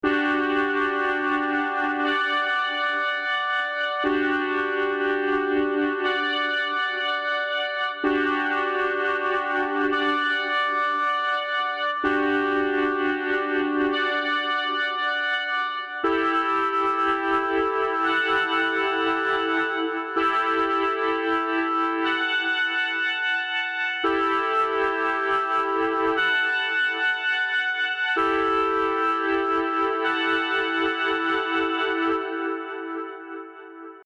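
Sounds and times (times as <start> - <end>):
retro synth chords: 0.0 - 34.0.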